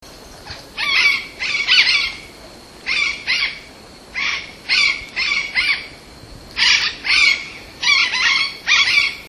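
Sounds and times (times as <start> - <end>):
yellow-eared parrot calling: 0.8 - 2.3, 4.2 - 6.0, 6.6 - 9.2.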